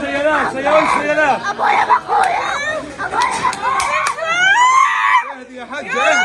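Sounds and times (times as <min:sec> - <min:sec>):
noisy crowd chatter: 0:00.0 - 0:06.2
people shouting: 0:00.7 - 0:06.2
girl screaming: 0:02.2 - 0:05.3
sharp slapping sounds: 0:03.1 - 0:04.3.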